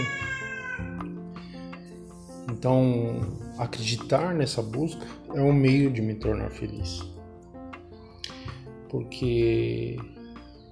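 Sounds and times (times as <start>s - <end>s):
cat meowing loudly in a drawn-out wavering cry: 0.0s - 1.0s
speech: 2.6s - 7.1s, 8.9s - 10.2s.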